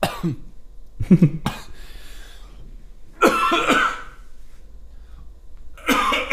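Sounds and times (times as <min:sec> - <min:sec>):
person coughing: 0:00.0 - 0:00.5, 0:03.2 - 0:04.2, 0:05.8 - 0:06.3.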